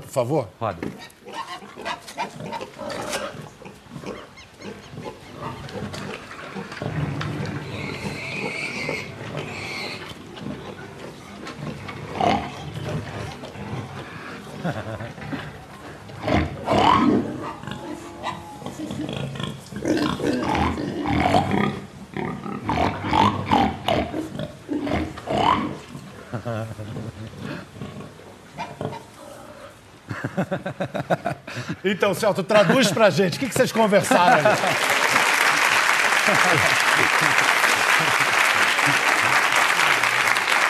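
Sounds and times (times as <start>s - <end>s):
speech: 0.1s - 1.2s, 30.5s - 31.1s, 31.8s - 35.0s, 36.3s - 37.4s
pigs grunting and oinking: 0.8s - 29.9s
pigs snorting and squealing: 1.0s - 26.1s
laughter: 14.6s - 15.4s, 26.2s - 27.3s, 30.1s - 40.6s.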